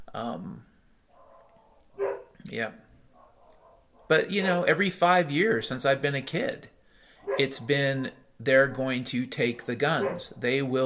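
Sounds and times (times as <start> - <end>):
speech: 0.2 - 0.8, 2.5 - 2.8, 4.1 - 6.8, 7.4 - 10.8
dogs barking: 1.1 - 2.4, 3.1 - 4.2, 7.2 - 8.2, 9.6 - 10.8.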